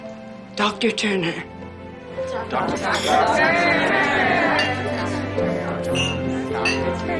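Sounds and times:
speech: 0:00.6 - 0:01.6, 0:02.3 - 0:04.1
murmur of a chatting group: 0:02.1 - 0:07.1
glasses clinking in a toast: 0:02.8 - 0:03.4, 0:04.6 - 0:04.9, 0:05.8 - 0:07.0.

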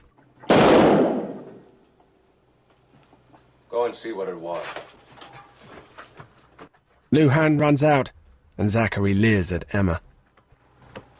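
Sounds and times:
gunshot fired through a house window: 0:00.5 - 0:01.7
speech: 0:03.8 - 0:05.0, 0:07.1 - 0:10.1.

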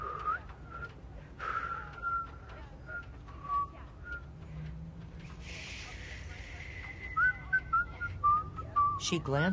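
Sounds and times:
person in a parked car whistling a tune: 0:00.2 - 0:04.2, 0:06.8 - 0:09.1
speech: 0:09.1 - 0:09.5.

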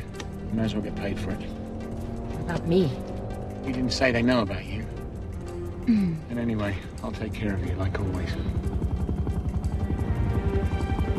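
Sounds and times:
speech: 0:00.5 - 0:01.6, 0:02.5 - 0:04.9, 0:05.8 - 0:08.8
helicopter overhead with rotor blades thudding: 0:07.2 - 0:11.1.

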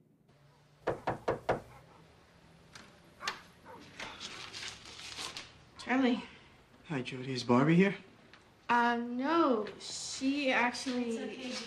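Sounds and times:
knocking on a wooden door: 0:00.8 - 0:01.7
quieter shuffling and faint movement sounds: 0:03.2 - 0:05.6, 0:10.7 - 0:11.6
speech: 0:05.9 - 0:08.1, 0:08.7 - 0:11.6.

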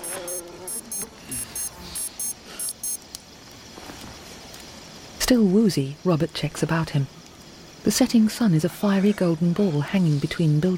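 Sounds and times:
wristwatch alarm beeping in high-pitched bursts: 0:00.0 - 0:03.0
speech: 0:05.3 - 0:07.2, 0:07.8 - 0:10.7.

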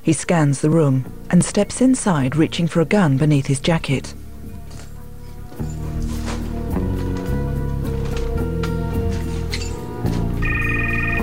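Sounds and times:
speech: 0:00.0 - 0:04.2
loud tense low sustained music: 0:00.6 - 0:11.2
mobile phone electronic ringtone from a drawer of an overturned table: 0:10.4 - 0:11.2.

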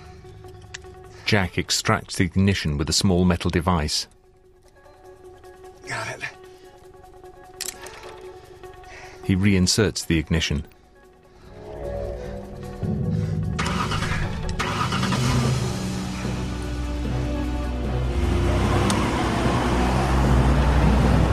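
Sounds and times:
speech: 0:01.3 - 0:04.2, 0:09.3 - 0:10.8
car driving through Los Angeles city streets: 0:11.4 - 0:21.3.

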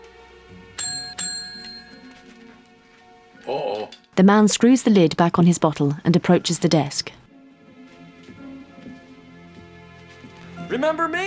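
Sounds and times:
reception desk bell pressed by hand: 0:00.8 - 0:02.2
speech: 0:03.4 - 0:07.2, 0:10.9 - 0:11.2.

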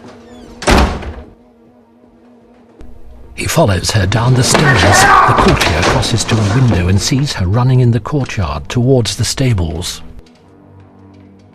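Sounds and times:
speech: 0:03.4 - 0:10.1
wooden chair knocked over in a hurried rush toward a door: 0:04.3 - 0:07.3.

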